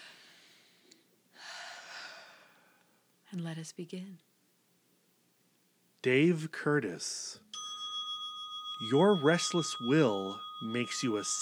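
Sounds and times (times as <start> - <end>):
deep slow breath taken as a calming exercise: 0.0 - 3.0
speech: 3.3 - 4.3, 6.0 - 7.5, 8.8 - 11.4.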